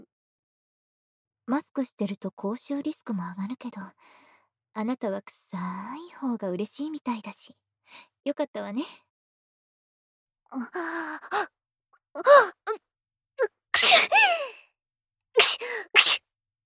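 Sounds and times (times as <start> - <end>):
speech: 1.5 - 4.2, 4.8 - 9.0, 10.5 - 11.6, 12.2 - 14.6
person sneezing loudly with breathy intakes: 13.8 - 14.0, 15.4 - 16.2.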